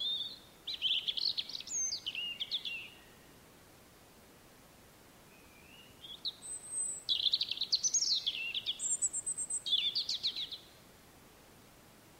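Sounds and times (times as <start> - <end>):
European robin singing: 0.0 - 3.2, 5.3 - 10.8
faint background hiss: 0.0 - 12.1.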